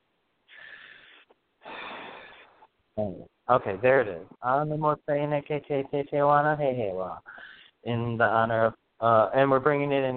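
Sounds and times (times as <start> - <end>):
person breathing in through the nose and out through the mouth: 0.5 - 2.7, 7.2 - 7.8
speech: 3.0 - 10.1.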